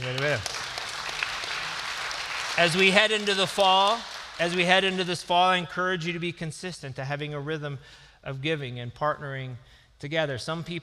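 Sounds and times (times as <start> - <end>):
audience applauding: 0.0 - 5.1
speech: 0.3 - 0.6, 2.6 - 10.8.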